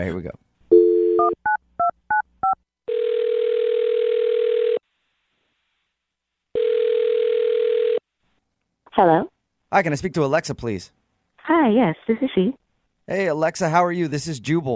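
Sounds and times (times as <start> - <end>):
speech: 0.0 - 0.5, 9.0 - 14.7
long telephone ringing tones: 0.7 - 1.4, 2.1 - 4.8, 6.6 - 8.0
telephone dial tone: 0.7 - 1.4, 2.9 - 4.8, 6.6 - 8.0.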